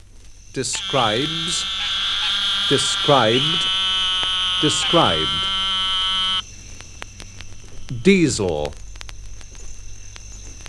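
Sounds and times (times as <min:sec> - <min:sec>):
speech: 0:00.5 - 0:02.0, 0:02.7 - 0:03.8, 0:04.6 - 0:05.5, 0:08.0 - 0:08.8
eastern narrow-mouthed toad Microhyla carolinensis buzzing call: 0:00.7 - 0:06.4.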